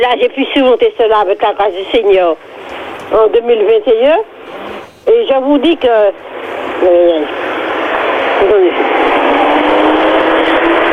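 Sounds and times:
speech: 0.0s - 7.4s, 8.4s - 9.4s
steady hiss of phone or radio line: 0.0s - 10.8s
car passing by: 6.5s - 10.9s.

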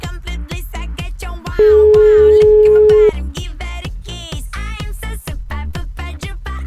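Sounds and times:
rhythmic music bed: 0.2s - 6.5s
telephone ringback tone while placing a call: 1.6s - 3.1s.

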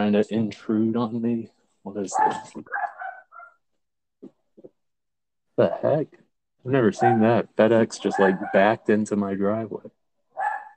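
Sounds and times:
speech: 0.0s - 2.8s, 5.6s - 10.0s
dog barking: 2.1s - 3.6s, 7.0s - 7.4s, 8.0s - 8.8s, 10.3s - 10.7s.

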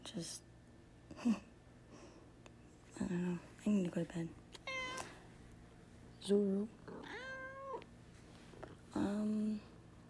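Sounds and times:
speech: 0.1s - 0.5s, 1.1s - 1.5s, 3.0s - 4.4s, 6.2s - 6.8s, 9.0s - 9.7s
cat meowing: 4.6s - 5.2s, 7.0s - 7.8s.

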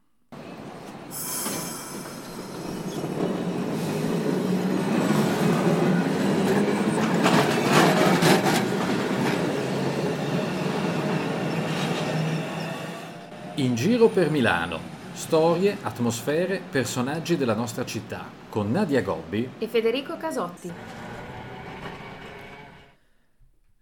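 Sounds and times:
tram wheels squealing: 0.4s - 15.8s, 20.7s - 23.0s
tram rumbling past: 0.4s - 18.5s, 20.7s - 23.0s
tram rail clatter: 0.6s - 12.4s
speech: 13.6s - 21.1s.

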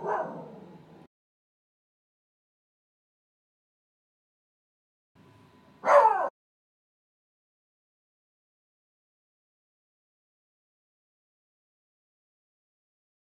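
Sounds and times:
dog barking: 0.0s - 0.8s, 5.8s - 6.3s.

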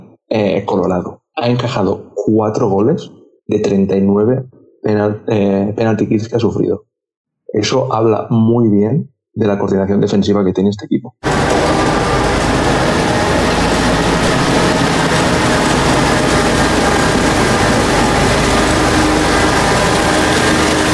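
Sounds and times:
speech: 0.3s - 6.9s, 7.5s - 12.0s
Zamboni ice resurfacing machine starting up: 11.2s - 20.9s.

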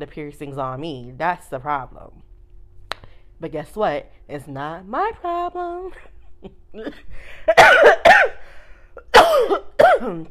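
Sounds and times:
speech: 0.0s - 2.2s, 3.4s - 8.4s, 9.4s - 10.2s
loud coughing fit with harsh raspy coughs: 7.4s - 10.2s.

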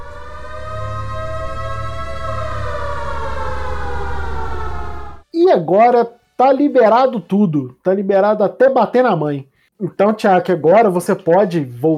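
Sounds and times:
low rumble: 0.0s - 5.3s
siren wailing with harmonic tone sliding downward: 0.0s - 6.5s
speech: 5.5s - 11.9s.

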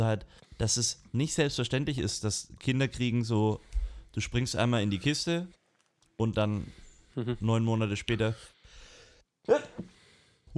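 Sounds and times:
speech: 0.0s - 5.6s, 6.2s - 8.6s, 9.4s - 10.5s
breathy inhale: 3.6s - 4.1s, 8.5s - 9.2s, 9.8s - 10.5s
faint breathing: 3.6s - 4.2s, 8.4s - 10.5s
sneeze: 9.5s - 9.9s.

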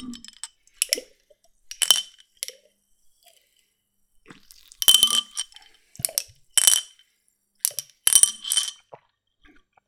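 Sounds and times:
marble rattling inside a Ramune soda bottle: 0.0s - 1.1s, 1.7s - 2.6s, 4.4s - 7.0s, 7.6s - 9.0s.

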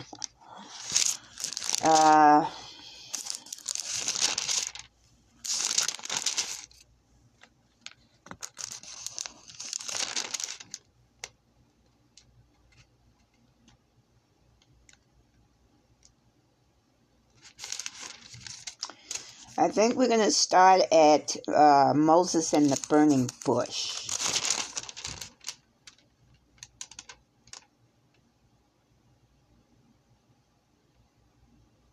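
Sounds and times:
book pages turning: 0.0s - 2.2s, 3.1s - 6.8s, 7.4s - 10.8s, 17.4s - 19.6s, 22.6s - 26.0s
speech: 1.8s - 2.6s, 19.8s - 24.0s.

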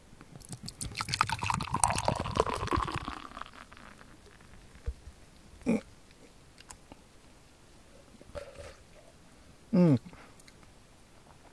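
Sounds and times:
yuzu beer being poured: 0.6s - 4.9s
speech: 9.8s - 10.1s.

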